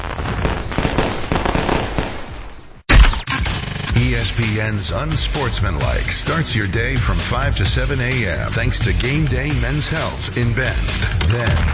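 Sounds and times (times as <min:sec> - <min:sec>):
fireworks crackling and popping: 0:00.0 - 0:04.6
speech: 0:04.2 - 0:11.7.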